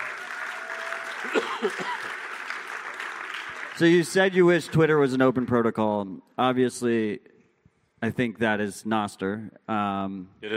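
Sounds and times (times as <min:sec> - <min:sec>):
crowd applauding: 0:00.0 - 0:05.8
speech: 0:01.3 - 0:02.1, 0:03.8 - 0:07.3, 0:08.0 - 0:10.5.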